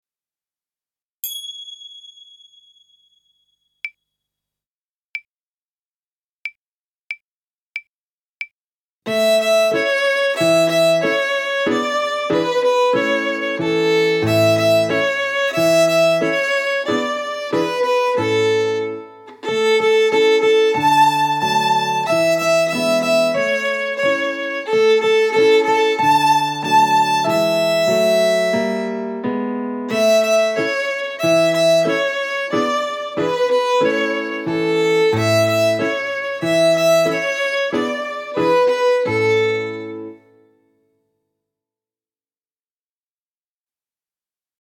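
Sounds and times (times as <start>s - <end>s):
violin: 9.1s - 40.3s.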